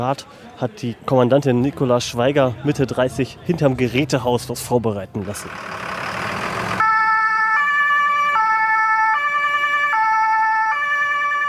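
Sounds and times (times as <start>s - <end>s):
speech: 0.0s - 5.9s
fire engine two-tone siren wailing: 6.7s - 11.4s.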